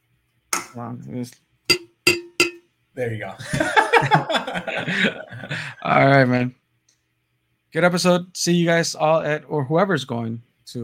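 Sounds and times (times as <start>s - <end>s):
speech: 0.7s - 1.8s, 3.0s - 6.6s, 7.7s - 10.8s
drinking glasses clinking in a toast: 1.7s - 2.6s
laughter: 3.4s - 5.9s.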